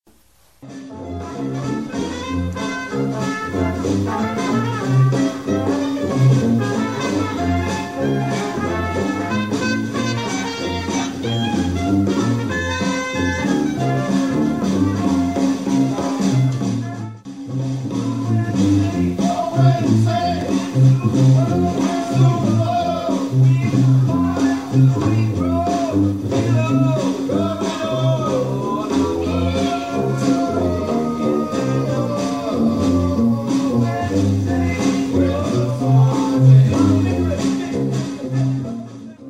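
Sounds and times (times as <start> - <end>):
wedding band playing: 0.1 - 39.2.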